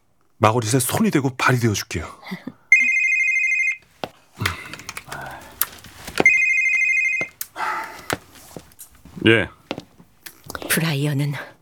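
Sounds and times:
speech: 0:00.4 - 0:02.6, 0:09.2 - 0:09.6, 0:10.8 - 0:11.5
telephone ringing with bright trilling bursts: 0:02.7 - 0:08.4.

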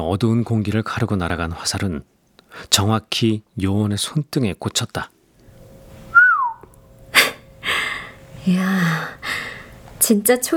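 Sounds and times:
speech: 0:00.0 - 0:05.2, 0:08.4 - 0:10.5
person whistling in a dark warehouse: 0:06.1 - 0:06.7.

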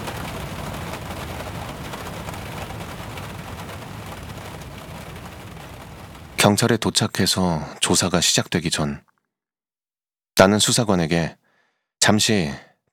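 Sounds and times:
sudden rain shower pouring down: 0:00.0 - 0:06.7
speech: 0:06.4 - 0:09.1, 0:10.4 - 0:11.4, 0:12.0 - 0:12.7.

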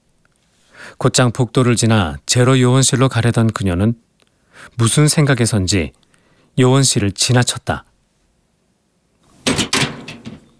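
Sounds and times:
speech: 0:01.0 - 0:06.0, 0:06.6 - 0:07.9
emergency door being opened with clunks: 0:09.4 - 0:10.5.

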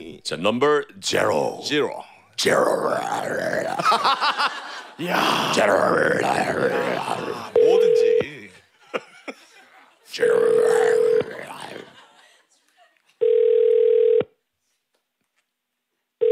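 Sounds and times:
speech: 0:00.0 - 0:08.1, 0:10.1 - 0:10.9
laughter: 0:03.5 - 0:13.2
telephone ringback tone, call not answered: 0:07.6 - 0:08.2, 0:10.2 - 0:11.4, 0:13.2 - 0:14.3.

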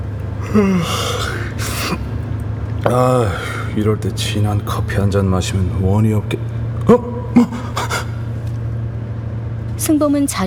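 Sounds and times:
low steady hum: 0:00.0 - 0:10.4
laughter: 0:00.4 - 0:02.1, 0:05.8 - 0:08.6
person yawning: 0:00.4 - 0:02.1, 0:02.8 - 0:03.8, 0:06.9 - 0:08.4
speech: 0:00.5 - 0:01.3, 0:02.8 - 0:07.7, 0:09.9 - 0:10.4.

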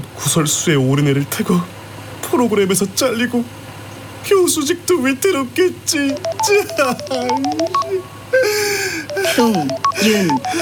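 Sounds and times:
speech: 0:00.3 - 0:03.6, 0:04.2 - 0:10.6
electronic phone ringtone for incoming call: 0:06.1 - 0:10.6.

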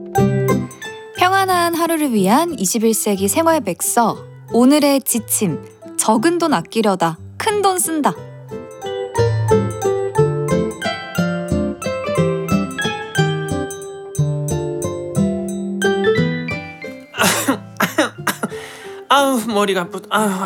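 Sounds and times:
tinkly melodic tune: 0:00.0 - 0:06.8, 0:07.4 - 0:20.4
speech: 0:01.4 - 0:08.3, 0:19.2 - 0:20.4
harsh loud coughs: 0:17.2 - 0:18.7.

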